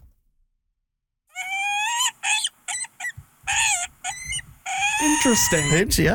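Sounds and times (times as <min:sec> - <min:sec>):
peregrine falcon wailing cries: 0:01.3 - 0:06.1
speech: 0:05.0 - 0:06.1.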